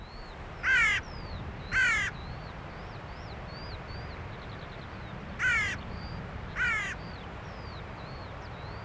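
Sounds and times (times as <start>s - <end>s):
Carrion crow cawing: 0.6s - 1.1s, 1.7s - 2.1s, 5.4s - 5.8s, 6.6s - 7.0s.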